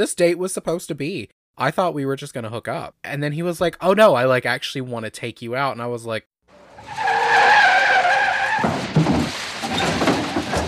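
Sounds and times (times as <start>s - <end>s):
speech: 0.0s - 6.3s
vehicle rumbling and scraping as it slides to a stop: 6.5s - 10.6s
car tires screeching in a skid: 6.6s - 10.6s.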